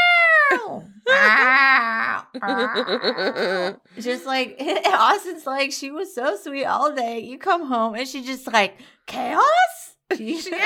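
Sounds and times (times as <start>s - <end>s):
person imitating a screaming cat: 0.0s - 3.4s
speech: 0.5s - 10.6s.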